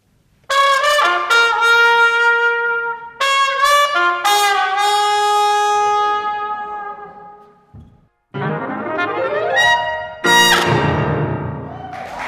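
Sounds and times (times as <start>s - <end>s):
loud trumpet playing a jazzy passage: 0.4s - 7.7s, 8.3s - 11.7s
piano playing ringing jazzy chords: 8.3s - 11.8s.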